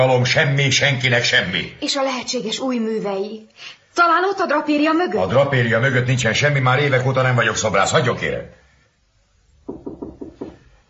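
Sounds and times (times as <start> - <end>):
speech: 0.0 - 8.6
firm knocks on a door: 9.6 - 10.7.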